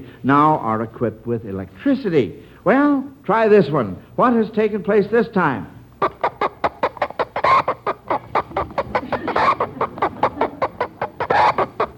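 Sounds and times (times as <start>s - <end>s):
speech: 0.0s - 6.1s
flock of chickens cackling and clucking: 6.0s - 11.9s.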